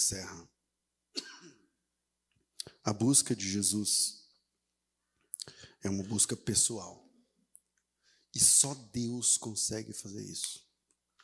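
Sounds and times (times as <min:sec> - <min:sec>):
speech: 0:00.0 - 0:00.6, 0:02.8 - 0:04.2, 0:05.5 - 0:07.0, 0:08.4 - 0:10.7
person with a lingering cough coughing: 0:01.1 - 0:01.7.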